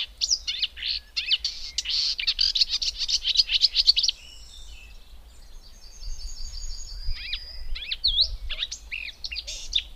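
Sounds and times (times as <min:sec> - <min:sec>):
Marsh warbler singing: 0:00.0 - 0:09.9.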